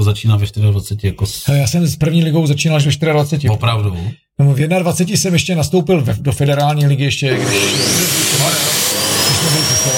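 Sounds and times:
speech: 0:00.0 - 0:08.4
vacuum cleaner running: 0:07.3 - 0:09.9.

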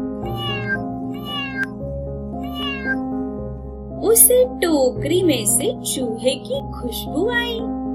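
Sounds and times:
cat meowing: 0:00.2 - 0:01.7, 0:02.4 - 0:03.1
speech: 0:04.2 - 0:07.8.

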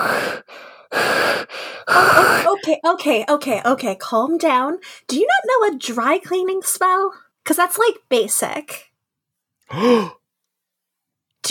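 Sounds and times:
deep laboured breathing: 0:00.0 - 0:02.6, 0:09.7 - 0:10.2
speech: 0:02.7 - 0:08.9, 0:09.7 - 0:10.2.

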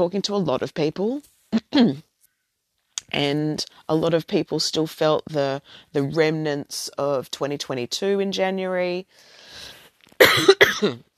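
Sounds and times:
speech: 0:00.0 - 0:02.1, 0:03.1 - 0:11.1
soft breath: 0:09.1 - 0:10.0
person coughing: 0:10.2 - 0:11.1.

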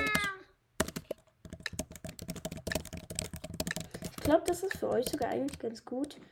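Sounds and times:
rapid clicking of a computer keyboard being typed on: 0:00.0 - 0:06.3
speech: 0:04.3 - 0:06.3.

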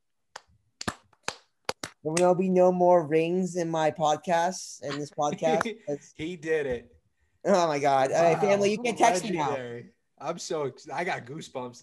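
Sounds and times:
hands clapping: 0:00.4 - 0:02.4
speech: 0:02.0 - 0:11.8
laughter: 0:05.0 - 0:05.8.

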